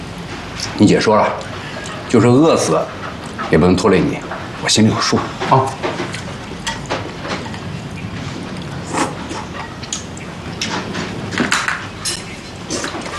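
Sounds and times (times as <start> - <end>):
speech: 0.6 - 6.0
bowls and chopsticks clinking at a table during a meal: 5.5 - 7.7, 8.6 - 13.1.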